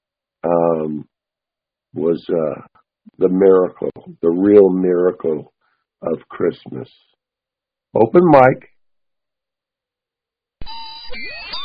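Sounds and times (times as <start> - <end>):
speech: 0.4 - 1.1, 2.0 - 7.1, 7.9 - 8.7
loud electronic wake-up buzzer: 10.6 - 11.6.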